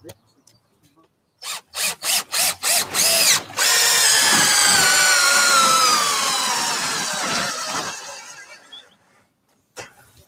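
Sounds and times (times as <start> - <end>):
power drill driving exterior-grade treated coach screws into wood: 1.4 - 8.8.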